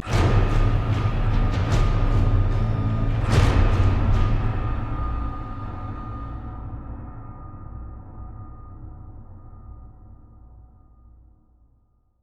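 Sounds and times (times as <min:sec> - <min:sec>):
drum: 0:00.0 - 0:05.2.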